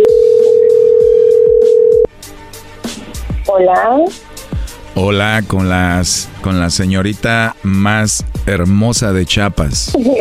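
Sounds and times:
telephone tone as a call is dialed: 0.0 - 2.1
speech: 3.6 - 4.3, 5.0 - 10.1.

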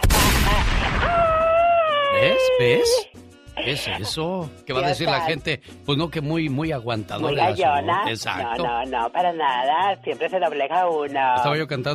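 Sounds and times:
gunshot: 0.0 - 1.3
speech: 2.4 - 11.9.

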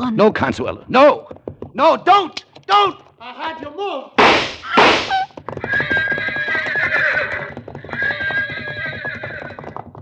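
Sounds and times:
speech: 0.0 - 1.2, 1.8 - 6.0
rapid uneven clatter of pounding horse hooves: 0.9 - 3.2, 4.2 - 9.9
horses rearing at gunshots and neighing shrilly with quavering whinnies: 4.2 - 9.9.

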